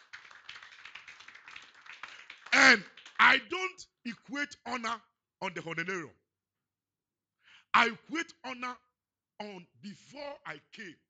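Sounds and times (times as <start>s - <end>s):
crowd applauding: 0.0s - 3.5s
speech: 2.6s - 6.2s, 7.7s - 11.0s.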